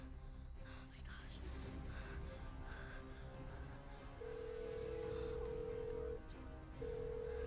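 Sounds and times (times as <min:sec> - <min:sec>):
noisy background: 0:00.0 - 0:07.4
old telephone ringing tone: 0:04.3 - 0:06.2, 0:06.8 - 0:07.4.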